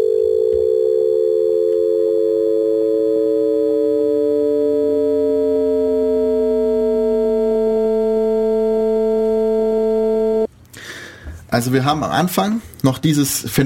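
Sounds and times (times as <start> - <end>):
amplitude-modulated electronic tone with modulation rate sweeping upward: 0.2 - 10.5
speech: 11.6 - 13.6.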